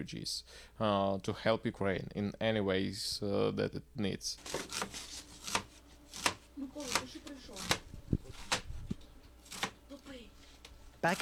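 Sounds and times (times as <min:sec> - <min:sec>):
speech: 0:00.0 - 0:05.1, 0:11.0 - 0:11.2
knife chopping herbs on a cutting board for dumplings: 0:04.4 - 0:08.7, 0:09.4 - 0:09.8.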